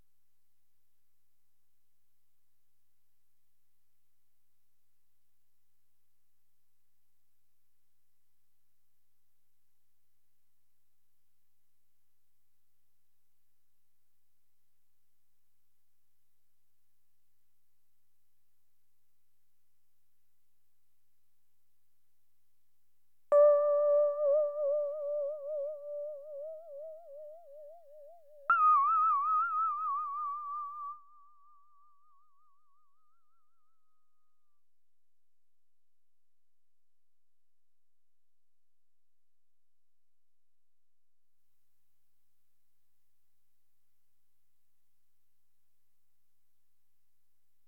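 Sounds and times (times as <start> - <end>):
DX7 synthesizer: 23.4 - 30.8.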